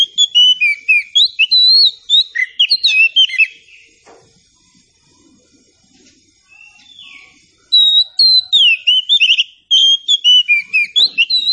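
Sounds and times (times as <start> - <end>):
Oriental Magpie-Robin singing rich varied whistles: 0.0 - 3.9, 6.5 - 11.5.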